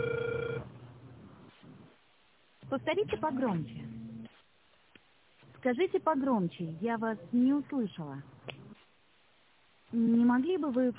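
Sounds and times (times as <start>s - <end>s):
telephone ringback tone while a call is dialed: 0.0s - 0.7s
speech: 2.7s - 4.0s, 5.6s - 8.6s, 9.9s - 10.9s.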